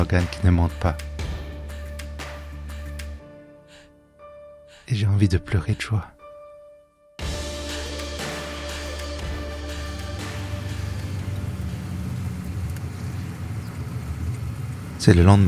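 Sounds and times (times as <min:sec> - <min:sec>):
speech: 0:00.0 - 0:01.1, 0:04.9 - 0:06.2, 0:15.0 - 0:15.4
car engine idling in traffic: 0:07.2 - 0:15.1.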